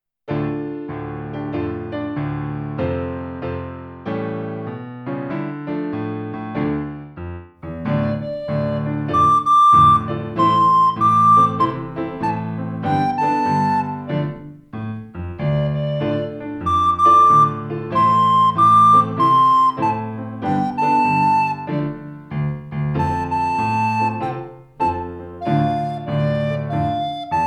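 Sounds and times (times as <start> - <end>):
piano: 0.3 - 27.4
flute: 7.7 - 14.6, 15.2 - 27.4.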